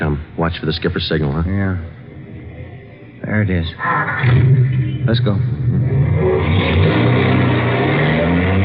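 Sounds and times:
speech: 0.0s - 2.0s, 3.3s - 6.8s
car engine revving as the vehicle pulls away: 3.7s - 8.6s.

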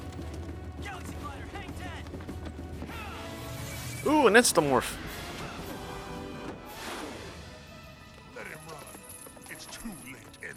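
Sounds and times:
horse hooves clip-clopping at a steady pace: 0.0s - 10.5s
speech: 4.0s - 5.1s.

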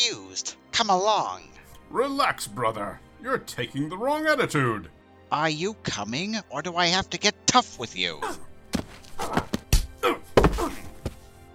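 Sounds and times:
speech: 0.1s - 8.5s
heavy punches thudding: 8.7s - 11.2s.

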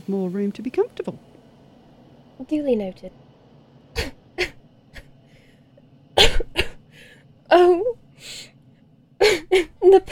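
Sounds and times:
speech: 0.1s - 1.3s, 2.4s - 3.2s, 7.5s - 8.4s, 9.2s - 10.1s
forced exaggerated coughs made to seem sick while boarding: 6.2s - 6.8s.

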